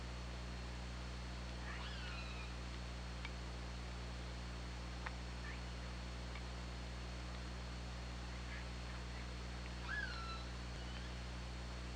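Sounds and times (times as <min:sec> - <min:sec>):
steady low underwater hum: 0:00.0 - 0:11.9
orca pulsed calls on hydrophone: 0:01.6 - 0:02.6, 0:09.8 - 0:11.4.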